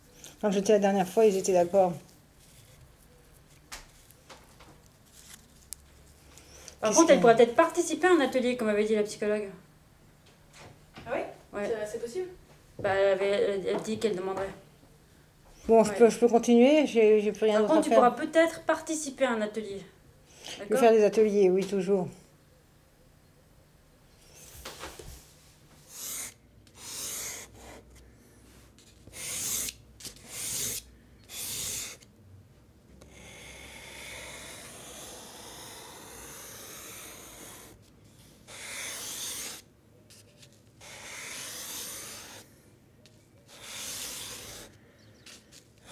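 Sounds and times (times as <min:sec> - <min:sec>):
speech: 0:00.4 - 0:02.1, 0:06.8 - 0:09.7, 0:11.6 - 0:14.6, 0:15.7 - 0:22.2
charcoal drawing on paper: 0:25.8 - 0:28.0, 0:28.8 - 0:32.0, 0:33.0 - 0:42.5, 0:43.5 - 0:45.7.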